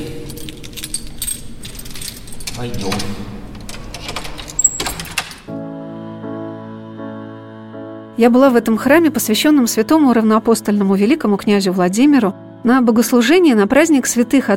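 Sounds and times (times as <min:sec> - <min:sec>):
church doors unlocked and pulled open with metal clunks: 0:00.0 - 0:05.5
keys jangling: 0:00.0 - 0:05.5
speech: 0:02.6 - 0:03.4, 0:08.2 - 0:14.5.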